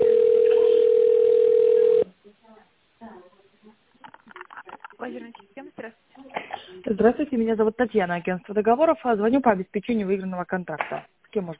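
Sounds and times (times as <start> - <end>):
telephone line tone while a call is transferred to an operator: 0.0 - 2.1
speech: 7.0 - 11.5.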